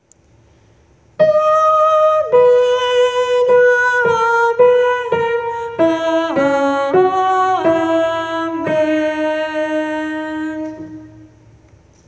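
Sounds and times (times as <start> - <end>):
tenor singing amen: 1.2 - 11.4.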